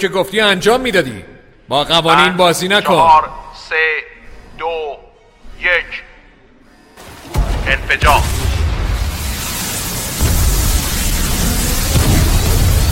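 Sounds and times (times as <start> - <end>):
speech: 0.0 - 4.1, 7.7 - 8.4
explosion with sharp cracks and sustained low rumble: 7.0 - 12.8.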